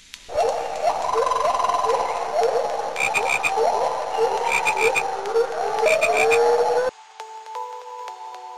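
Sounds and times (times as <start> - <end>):
chorus of frogs croaking: 0.3 - 6.9.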